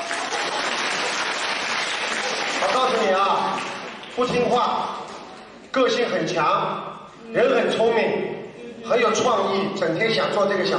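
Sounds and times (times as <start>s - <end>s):
audience applause: 0.0s - 4.2s
speech: 2.6s - 5.0s, 5.8s - 10.7s.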